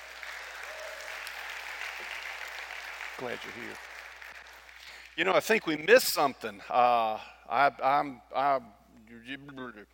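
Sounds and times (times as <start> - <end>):
audience applauding at a church: 0.0 - 5.2
speech: 3.2 - 4.0, 5.2 - 9.9.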